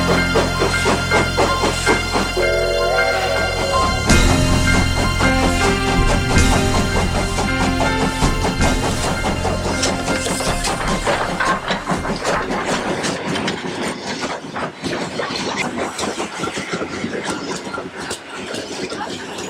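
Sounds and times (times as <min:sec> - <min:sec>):
low drone: 0:00.0 - 0:13.2
train pulling into station rumbling and clattering: 0:00.0 - 0:19.4.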